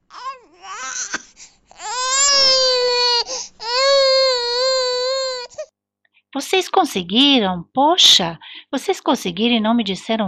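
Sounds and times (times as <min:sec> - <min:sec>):
young son wailing on upper floor of duplex penthouse apartment in Lagoa: 0:00.2 - 0:01.2, 0:01.8 - 0:05.6
speech: 0:06.5 - 0:10.2.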